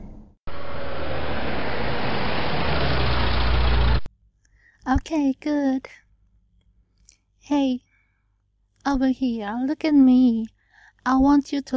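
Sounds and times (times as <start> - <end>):
car engine running while pulling over into a parking lot: 0.5 - 4.1
speech: 5.0 - 6.0, 7.5 - 7.8, 8.8 - 11.7.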